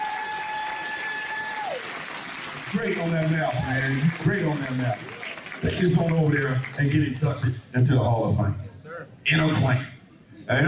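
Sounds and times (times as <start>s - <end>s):
audience applause for a child at a school event: 0.0s - 7.5s
speech: 2.7s - 8.7s, 9.3s - 9.9s, 10.5s - 10.6s.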